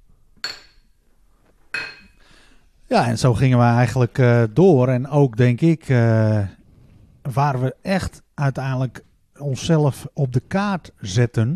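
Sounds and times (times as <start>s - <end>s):
beer glasses clinking in a toast: 0.4s - 0.9s, 1.7s - 2.2s
speech: 2.9s - 6.6s, 7.2s - 11.5s.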